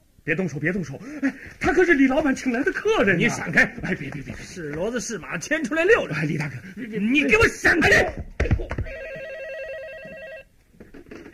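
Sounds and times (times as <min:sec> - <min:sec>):
speech: 0:00.2 - 0:08.7
telephone ringing with an electronic warbling ring: 0:08.8 - 0:10.6.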